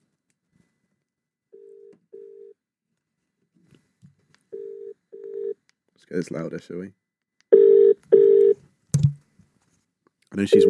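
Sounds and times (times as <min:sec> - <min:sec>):
electronic ringback tones of an outgoing phone call: 0:04.6 - 0:05.6, 0:07.5 - 0:08.6, 0:10.4 - 0:10.6
speech: 0:06.1 - 0:07.0, 0:10.4 - 0:10.6.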